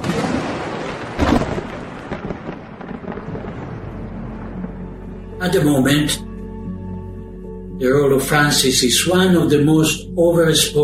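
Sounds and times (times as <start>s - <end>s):
thunderclap from lightning strike: 0.0s - 5.6s
speech: 5.4s - 6.3s, 7.8s - 10.8s.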